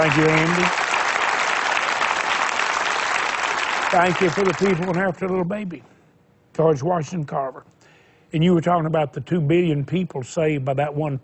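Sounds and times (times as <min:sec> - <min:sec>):
speech: 0:00.0 - 0:00.9, 0:03.9 - 0:05.9, 0:06.6 - 0:11.2
audience applause: 0:00.0 - 0:05.4.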